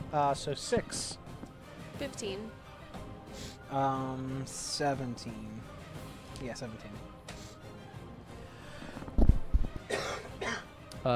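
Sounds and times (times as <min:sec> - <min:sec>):
speech: 0:00.1 - 0:01.2, 0:02.0 - 0:02.6, 0:03.3 - 0:05.8, 0:06.4 - 0:07.1
person coughing: 0:09.9 - 0:10.7.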